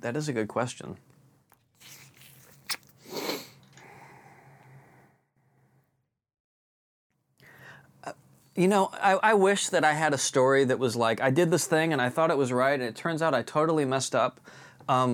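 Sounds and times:
speech: 0:00.0 - 0:01.2, 0:08.0 - 0:15.1
sipping tea from a cup: 0:01.5 - 0:03.8.

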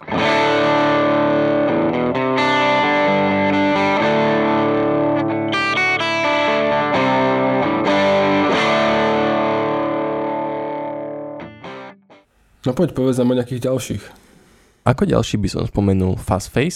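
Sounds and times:
electric guitar through boutique overdrive pedal playing gritty chords: 0:00.0 - 0:12.2
speech: 0:12.6 - 0:14.2, 0:14.8 - 0:16.7.

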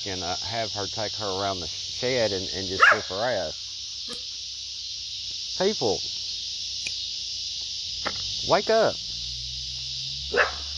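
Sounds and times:
speech: 0:00.0 - 0:04.3, 0:05.6 - 0:06.2, 0:08.4 - 0:09.0
steady hiss: 0:00.0 - 0:10.7
dog bark: 0:02.8 - 0:03.1, 0:10.3 - 0:10.7.

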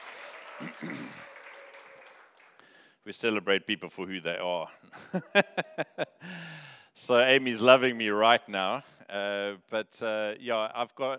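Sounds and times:
crowd applauding: 0:00.0 - 0:02.9
person cheering: 0:00.1 - 0:02.2
laughter: 0:00.4 - 0:01.5, 0:04.9 - 0:06.3
speech: 0:00.6 - 0:01.2, 0:03.1 - 0:06.4, 0:07.0 - 0:11.1.

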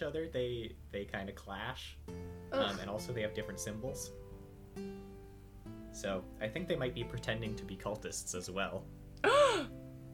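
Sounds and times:
speech: 0:00.0 - 0:04.2, 0:04.8 - 0:05.0, 0:06.0 - 0:09.8
person acting out a dramatic gasp: 0:09.2 - 0:09.7.

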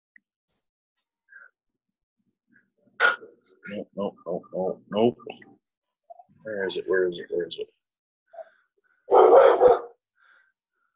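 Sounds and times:
speech: 0:03.6 - 0:05.6, 0:06.4 - 0:07.8
dog barking loudly and roughly: 0:09.1 - 0:10.0.

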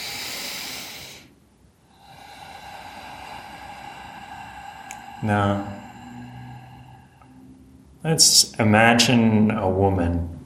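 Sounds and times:
deep breath: 0:00.0 - 0:08.0
steady quiet hiss: 0:00.0 - 0:10.4
speech: 0:05.2 - 0:05.7, 0:08.0 - 0:10.4.

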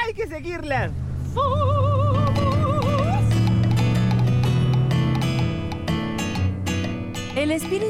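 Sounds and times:
speech: 0:00.1 - 0:02.0, 0:07.4 - 0:07.8
constant tonal backdrop: 0:01.4 - 0:07.8
horse hooves galloping: 0:02.0 - 0:07.8.

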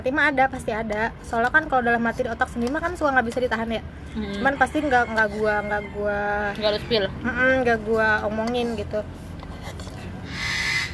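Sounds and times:
speech: 0:00.0 - 0:09.2
goose honking: 0:10.3 - 0:10.9.

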